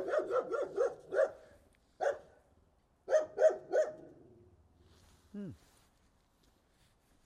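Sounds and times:
dog barking: 0.0s - 2.4s, 3.1s - 4.1s
speech: 5.4s - 5.8s.

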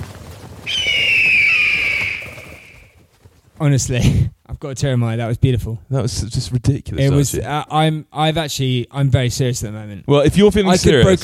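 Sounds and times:
eagle screech while soaring through the sky: 0.6s - 3.0s
speech: 3.6s - 11.2s.

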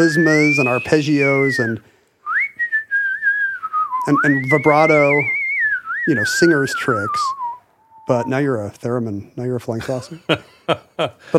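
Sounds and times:
speech: 0.0s - 1.9s, 4.0s - 5.4s, 6.1s - 7.4s, 8.1s - 11.3s
person whistling a single sustained high note: 0.4s - 8.4s.

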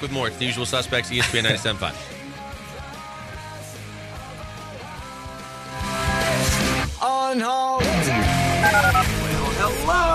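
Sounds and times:
speech: 0.0s - 2.2s, 7.3s - 9.2s
loud busy music jingle with brief sung bending melody: 0.0s - 10.1s
telephone keypad dialing tones: 8.6s - 9.0s.

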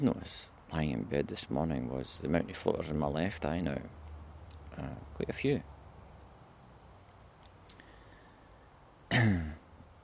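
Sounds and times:
speech: 0.0s - 4.0s, 4.8s - 5.7s, 9.2s - 9.4s
sharp cough with a rough voiced tail: 9.1s - 9.6s.

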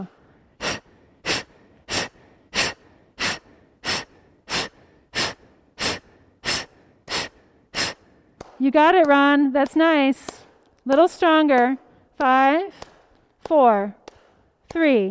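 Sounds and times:
people exhaling forcefully in a group breathing exercise: 0.0s - 8.3s
speech: 8.6s - 12.8s, 13.5s - 14.0s, 14.7s - 15.0s.

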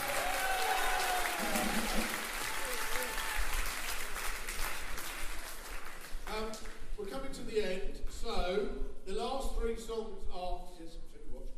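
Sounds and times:
crowd applauding: 0.0s - 6.8s
speech: 1.8s - 2.2s, 7.4s - 11.0s.

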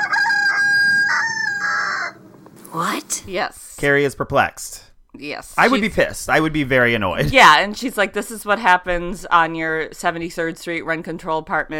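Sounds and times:
rooster crowing: 0.0s - 2.4s
speech: 2.8s - 11.7s.

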